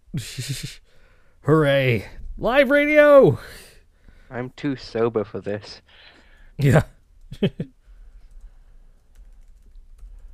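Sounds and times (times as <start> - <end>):
speech: 0.2 - 3.6, 4.3 - 7.8
typing on a computer keyboard: 8.1 - 10.3.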